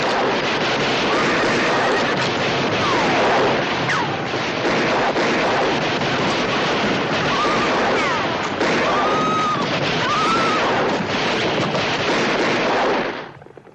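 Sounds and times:
gunfire volleys in a western shootout: 0.0 - 13.7.

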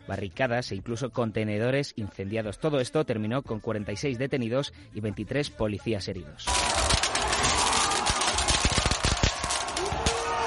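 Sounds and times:
speech: 0.1 - 7.0
crowd roar at street protest: 6.5 - 10.4
firework bangs at street protest: 6.5 - 10.4.

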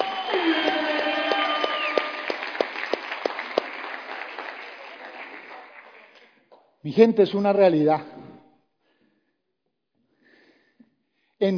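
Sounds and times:
crowd applauding: 0.0 - 6.4
speech: 6.8 - 8.1.

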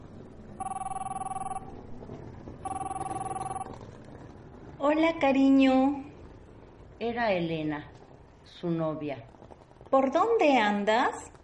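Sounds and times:
mobile phone ringing with electronic trilling: 0.6 - 1.8, 2.6 - 3.8
speech: 4.8 - 6.0, 7.0 - 7.9, 8.5 - 9.3, 9.9 - 11.3.

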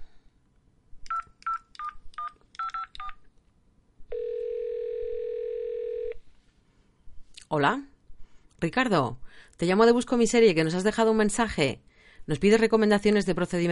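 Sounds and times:
faint noise: 0.0 - 13.7
long steady telephone tone: 4.1 - 6.2
speech: 7.5 - 7.9, 8.6 - 13.7.

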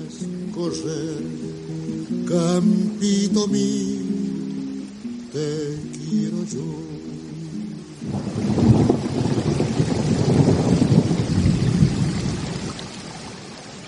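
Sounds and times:
steady heavy rain: 0.0 - 13.8
speech: 0.6 - 4.0, 5.3 - 7.1
low rumbling thunder: 8.0 - 13.2.

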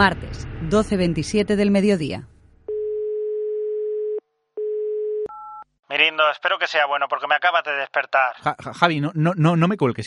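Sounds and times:
speech: 0.0 - 2.3, 5.9 - 10.0
telephone line tone after a call is hung up: 2.7 - 5.6.

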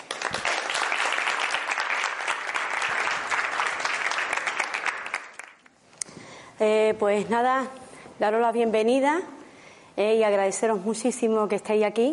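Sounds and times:
audience applause with dense clapping: 0.0 - 5.7
speech: 6.6 - 9.4, 10.0 - 12.1.

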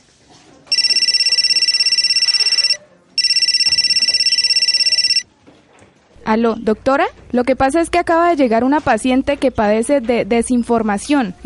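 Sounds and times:
telephone ringing tone as a call is placed to a doctor: 0.7 - 5.3
speech: 6.3 - 11.4.

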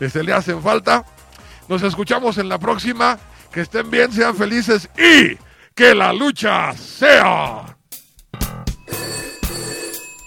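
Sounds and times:
speech: 0.0 - 7.7
telephone bell ringing for an incoming call: 8.8 - 10.2.

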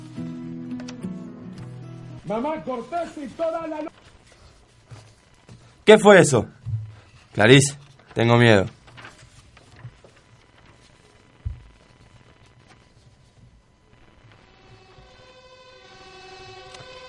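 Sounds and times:
speech: 2.3 - 3.9, 5.9 - 6.6, 7.4 - 8.8
dull thumps: 6.6 - 7.4, 11.4 - 11.8
fire engine siren: 14.7 - 17.0.

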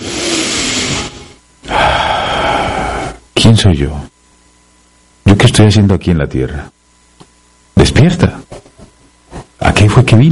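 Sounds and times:
deep breath: 1.6 - 3.2
speech: 3.5 - 4.1, 5.5 - 6.8, 8.0 - 8.6, 9.8 - 10.3.

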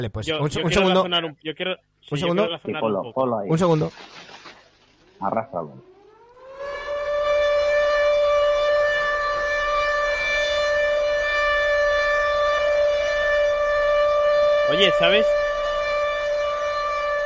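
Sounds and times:
speech: 0.0 - 4.4, 5.2 - 5.9, 14.7 - 15.4
civil defense nuclear alert siren: 5.7 - 17.2.

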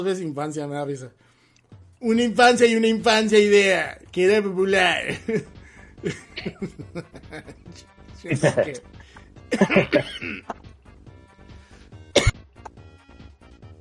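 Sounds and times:
speech: 0.0 - 1.4, 2.0 - 10.7
laughter: 5.1 - 8.8, 9.5 - 10.4
coughing fit with throaty strained vocal sounds: 9.5 - 10.6, 12.1 - 12.6.

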